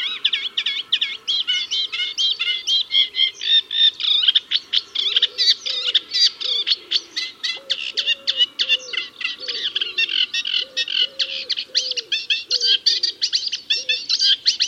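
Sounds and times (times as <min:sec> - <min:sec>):
reed warbler song: 0:00.0 - 0:14.6.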